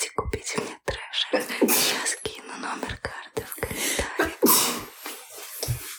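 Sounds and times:
clicks: 0.0s - 4.6s
person sneezing: 1.6s - 2.1s, 4.2s - 4.9s.

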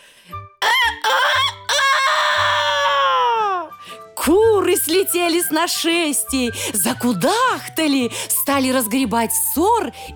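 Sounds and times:
rooster crowing: 0.6s - 3.3s
speech: 4.2s - 10.1s.

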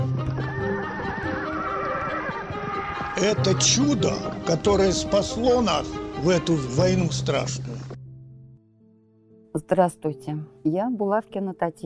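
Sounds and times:
hooves clip-clopping: 0.0s - 5.8s
horse whinnying: 0.3s - 4.6s
speech: 3.2s - 7.8s, 9.7s - 11.8s.

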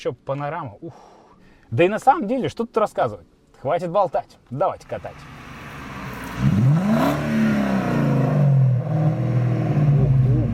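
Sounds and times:
speech: 0.0s - 5.4s
BMW 7 Series E38 car engine revving: 4.9s - 10.5s.

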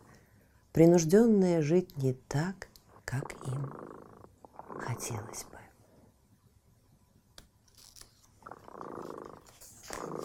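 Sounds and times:
speech: 0.8s - 4.1s, 4.7s - 5.6s
cat purring: 2.7s - 5.8s, 8.3s - 10.2s.

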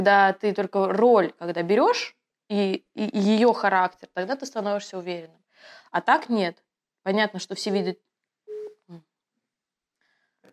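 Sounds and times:
speech: 0.0s - 8.1s, 8.9s - 9.1s
phone ringing with an incoming call: 8.5s - 8.8s.

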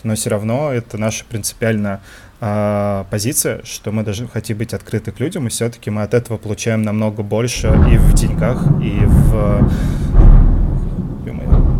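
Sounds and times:
speech: 0.0s - 10.2s
low rolling rumble of thunder: 7.6s - 11.7s.

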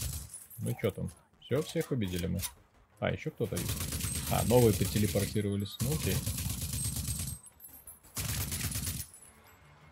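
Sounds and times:
rapid video game gunfire from shooting enemies: 0.0s - 0.3s, 2.7s - 7.4s, 8.2s - 9.1s
speech: 0.7s - 6.4s.

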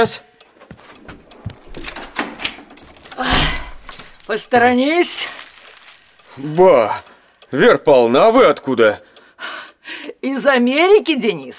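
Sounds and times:
speech: 0.0s - 0.3s, 4.3s - 5.4s, 6.4s - 9.1s, 10.2s - 11.5s
door swinging open with whoosh and rattle: 0.6s - 3.9s
latch clicking and knocking: 1.1s - 4.2s.

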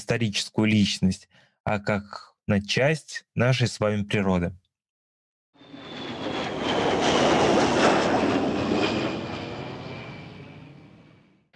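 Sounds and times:
speech: 0.0s - 4.6s
airplane engine roar on landing approach to Sheremetyevo airport: 5.6s - 11.5s.

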